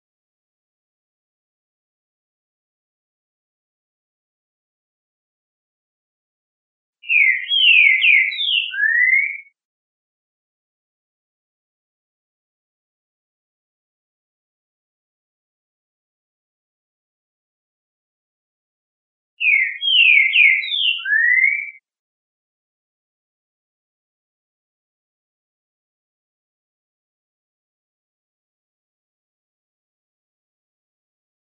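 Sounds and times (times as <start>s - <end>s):
Trinca Ferro bird singing classic song: 7.0s - 9.6s, 19.4s - 21.8s.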